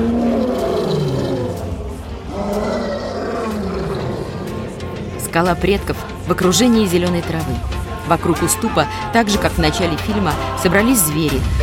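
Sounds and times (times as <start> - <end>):
several lionesses roaring in chorus: 0.0 - 6.2
speech: 5.4 - 11.6.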